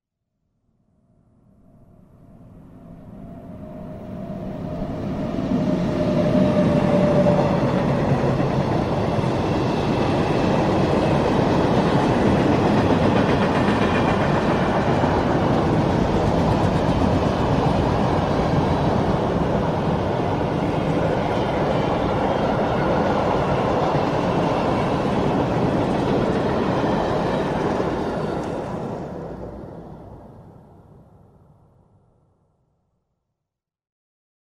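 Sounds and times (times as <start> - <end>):
freight train passing along tracks lined with acoustic noise barriers: 2.3 - 31.7.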